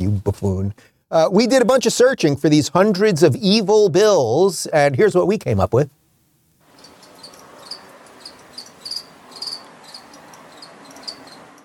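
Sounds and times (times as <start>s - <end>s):
soft hiss: 0.0s - 11.6s
speech: 0.1s - 6.0s
crickets chirping: 6.6s - 11.6s.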